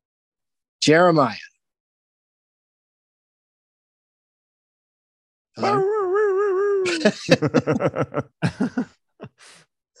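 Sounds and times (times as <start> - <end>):
speech: 0.8 - 1.5, 5.6 - 6.0, 6.9 - 9.6
person imitating a dog whining, yipping and barking: 5.6 - 7.2
laughter: 5.6 - 9.6.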